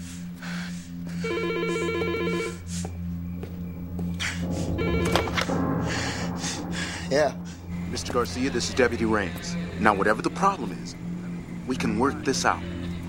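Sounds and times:
low steady hum: 0.0s - 13.0s
telephone ringing with electronic trilling: 1.2s - 2.6s
speech: 7.1s - 7.4s, 8.0s - 11.0s, 11.7s - 13.0s.

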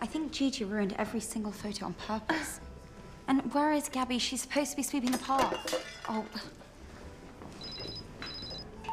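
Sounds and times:
speech: 0.0s - 2.7s, 3.3s - 6.6s
phone ringing: 7.6s - 8.9s.

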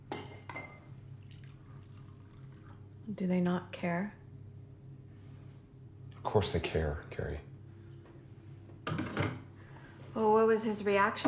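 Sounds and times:
steady low hum: 0.0s - 11.2s
coffee pouring into a cup: 1.1s - 3.1s
speech: 3.1s - 4.2s, 6.3s - 7.5s, 10.2s - 11.2s.

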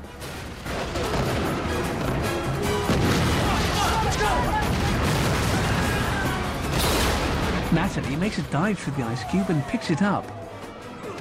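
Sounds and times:
crashing debris: 0.1s - 8.1s
explosive charges detonating: 0.1s - 8.4s
speech: 7.9s - 10.4s.

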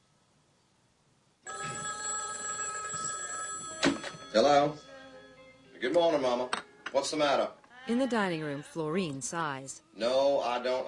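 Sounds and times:
telephone ringing in a hallway with an electronic trill: 1.5s - 6.5s
speech: 4.3s - 4.9s, 5.8s - 10.8s.

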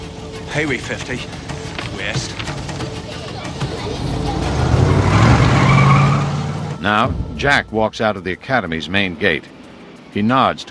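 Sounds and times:
sports car tire noise: 0.0s - 9.4s
speech: 0.5s - 1.4s, 2.0s - 2.6s, 6.8s - 9.5s, 10.1s - 10.6s
Porsche sports car engine revving while turning a corner: 3.9s - 6.8s.

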